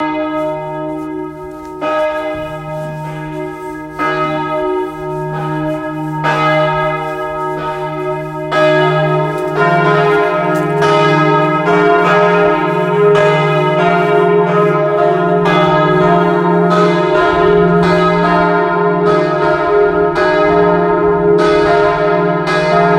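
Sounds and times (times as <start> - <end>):
church bells ringing in Dortelweil, Bad Vilbel: 0.0 - 22.9.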